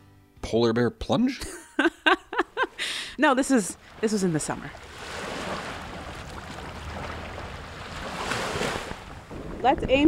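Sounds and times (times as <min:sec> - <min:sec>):
speech: 0:00.5 - 0:02.0, 0:03.2 - 0:04.9, 0:09.6 - 0:10.0
laughter: 0:01.4 - 0:03.1
lake water splashing around a swimmer in Lake Ontario in summer: 0:03.2 - 0:10.0
wind buffeting the microphone: 0:03.8 - 0:10.0.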